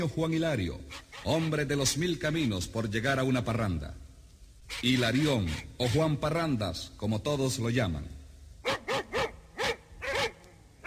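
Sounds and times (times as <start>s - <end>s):
speech: 0.0s - 4.0s, 4.7s - 8.2s
dogs barking at night: 8.6s - 10.8s.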